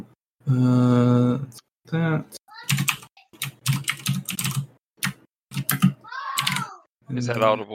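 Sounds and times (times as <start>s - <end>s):
speech: 0.5s - 2.4s, 7.2s - 7.7s
rapid typing on a loud computer keyboard: 2.6s - 6.7s.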